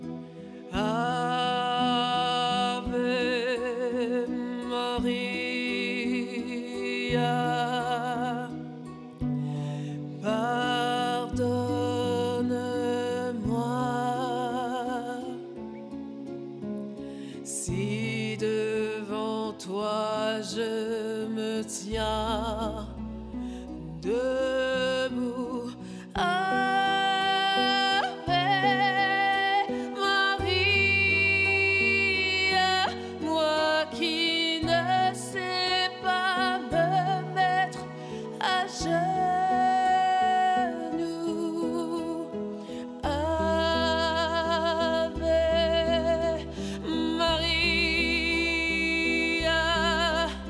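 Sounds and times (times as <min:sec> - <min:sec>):
person singing in French: 0:00.3 - 0:15.9, 0:17.3 - 0:50.4.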